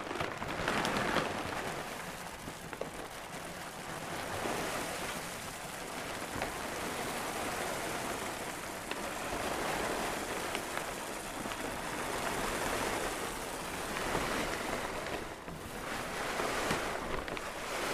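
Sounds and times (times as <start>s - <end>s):
dry dog kibble pouring into a can about 2 feet tall: 0.0s - 17.8s.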